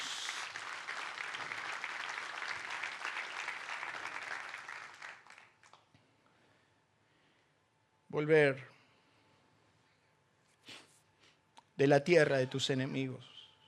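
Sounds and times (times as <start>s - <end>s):
audience applauding: 0.0s - 5.8s
speech: 8.2s - 8.7s, 11.8s - 13.3s.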